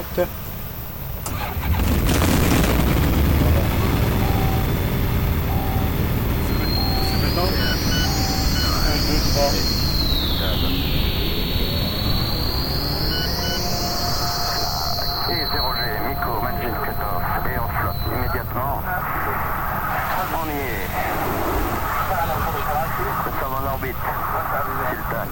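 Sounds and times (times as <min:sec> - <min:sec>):
sweeping whining tones: 0:00.8 - 0:25.2
light aircraft piston engine being started with both magnetos on: 0:01.2 - 0:06.5.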